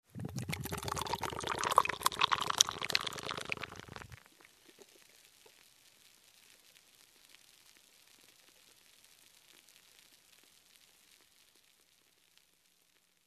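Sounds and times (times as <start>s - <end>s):
soda pouring: 0.0s - 5.0s.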